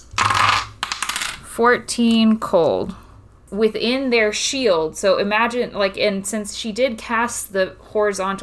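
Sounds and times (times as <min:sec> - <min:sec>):
six-sided dice clattering across a hard tabletop: 0:00.2 - 0:01.4
speech: 0:01.6 - 0:08.4.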